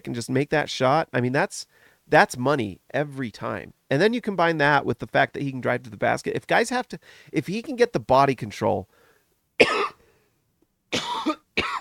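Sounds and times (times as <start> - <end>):
speech: 0.0 - 9.0, 9.6 - 9.8
person recovering from COVID coughing: 9.6 - 10.0, 10.9 - 11.8.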